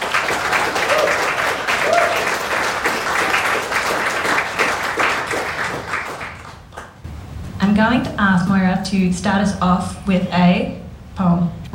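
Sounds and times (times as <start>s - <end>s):
audience applause: 0.0s - 7.0s
speech: 7.8s - 11.7s.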